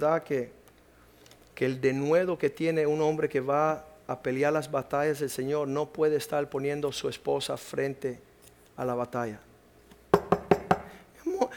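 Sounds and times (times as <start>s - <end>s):
speech: 0.0s - 0.6s, 1.6s - 9.5s
knocking on a door: 10.1s - 10.9s.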